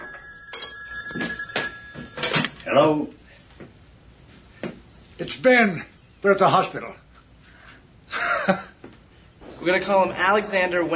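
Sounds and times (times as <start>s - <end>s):
telephone ringing with thin steady high electronic tone: 0.0s - 3.0s
speech: 2.8s - 3.2s, 5.4s - 7.0s, 8.5s - 8.7s, 9.6s - 10.9s.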